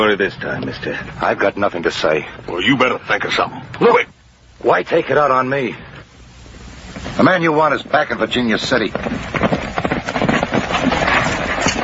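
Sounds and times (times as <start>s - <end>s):
speech: 0.0s - 5.9s, 7.1s - 9.6s
horse hooves clip-clopping: 6.5s - 11.8s.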